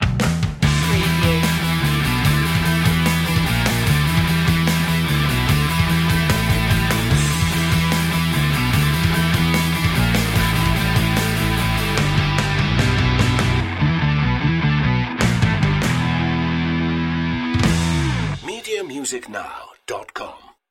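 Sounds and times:
nitro boost rock stinger: 0:00.0 - 0:18.4.

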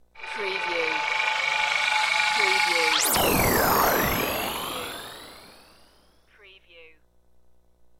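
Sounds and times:
spaceship taking off: 0:00.0 - 0:06.0.

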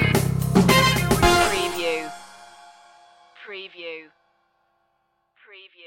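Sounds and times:
short musical groove stinger: 0:00.2 - 0:03.3.

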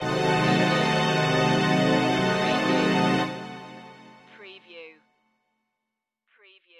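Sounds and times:
string stab: 0:00.0 - 0:04.3.

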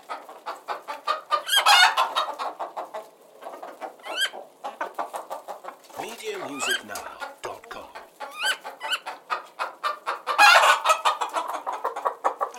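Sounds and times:
hens clucking and cackling in a hen house on a farm: 0:00.0 - 0:12.5
hen squawking in a hen house on a farm: 0:05.9 - 0:08.6.

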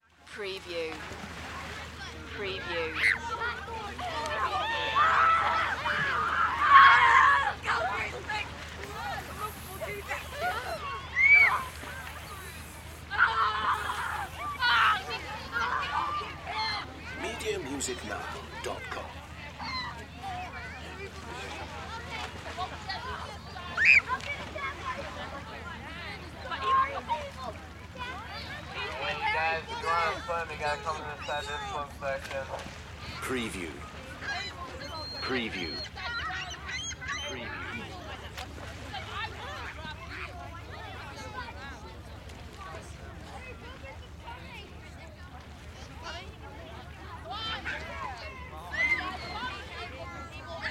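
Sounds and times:
beach crowd: 0:00.0 - 0:50.6.

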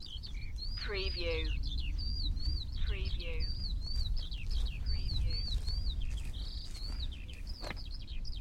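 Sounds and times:
nature sounds: 0:00.0 - 0:08.3
footsteps walking by: 0:02.3 - 0:07.9.

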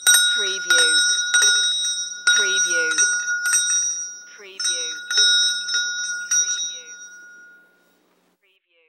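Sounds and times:
Indian bells in Hyderabad: 0:00.0 - 0:08.1.

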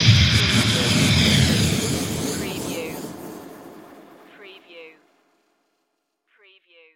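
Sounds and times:
magical blast with swirl trails: 0:00.0 - 0:05.3.

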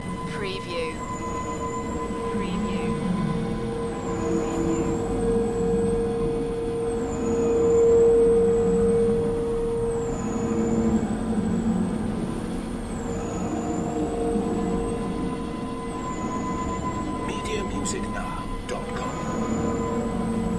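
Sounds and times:
stormy underworld ambience: 0:00.0 - 0:20.5.

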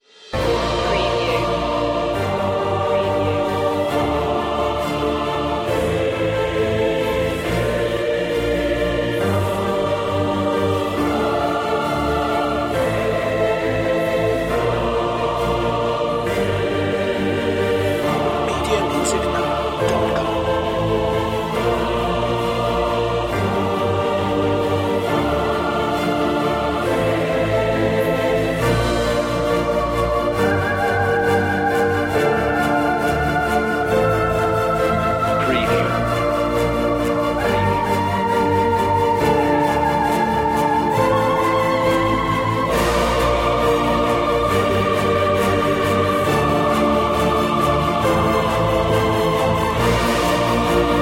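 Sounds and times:
intense music without drums: 0:00.0 - 0:51.0.

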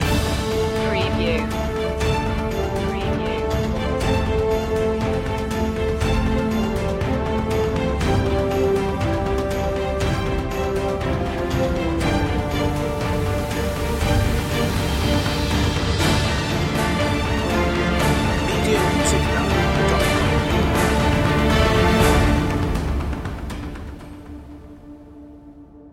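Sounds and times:
orchestral music mix: 0:00.0 - 0:25.8.

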